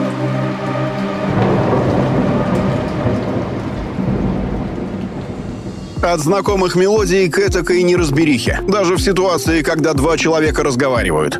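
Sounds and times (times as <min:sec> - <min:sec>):
deep rumble of thunder: 0:00.0 - 0:08.1
heavy pouring rain: 0:00.0 - 0:08.8
speech: 0:06.0 - 0:11.3.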